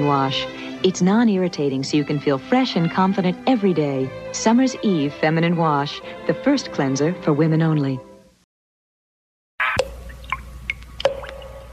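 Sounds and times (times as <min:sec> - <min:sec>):
speech: 0:00.0 - 0:08.1
blood dripping: 0:09.8 - 0:11.7.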